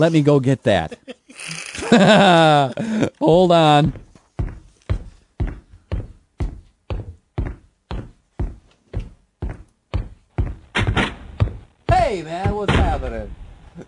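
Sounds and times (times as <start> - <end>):
speech: 0.0 - 1.1, 1.9 - 4.0
laughter: 0.8 - 3.2
heavy footsteps walking to answer the doorbell: 3.3 - 13.6.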